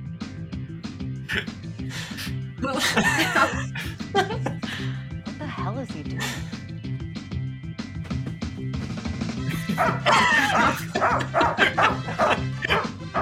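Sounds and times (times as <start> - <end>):
music with a steady beat: 0.0 - 5.6, 6.2 - 13.2
speech: 1.3 - 4.5, 5.8 - 6.6, 9.8 - 12.5
laughter: 2.2 - 5.0, 9.4 - 13.2
dog barking rapidly and excitedly with yips: 9.5 - 13.2.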